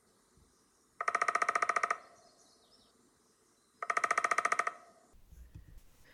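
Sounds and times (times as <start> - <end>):
Downy Woodpecker drumming: 1.0 - 2.2, 3.8 - 5.1.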